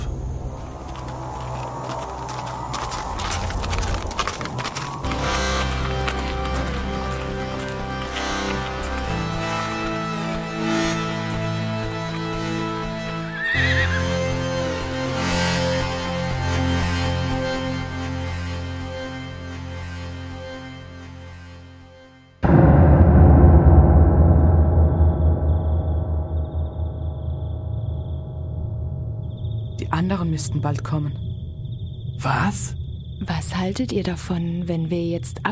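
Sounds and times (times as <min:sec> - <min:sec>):
horse hooves clip-clopping in a steady trot: 0:00.4 - 0:13.8
continuous sustained musical backdrop shifting chords: 0:01.7 - 0:21.7, 0:22.4 - 0:29.2
speech: 0:30.2 - 0:31.2, 0:32.2 - 0:32.8, 0:33.6 - 0:35.5.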